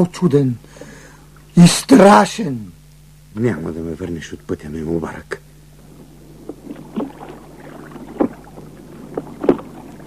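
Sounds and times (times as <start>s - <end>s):
speech: 0.0s - 0.7s, 1.6s - 2.8s, 3.4s - 5.4s
low steady hum: 0.0s - 10.0s
oars splashing in lake water: 5.9s - 10.0s.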